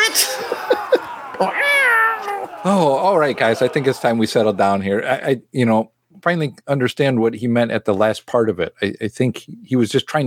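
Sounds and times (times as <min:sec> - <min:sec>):
laughter: 0:00.0 - 0:04.8
cat meowing: 0:01.6 - 0:02.5
speech: 0:02.6 - 0:10.2.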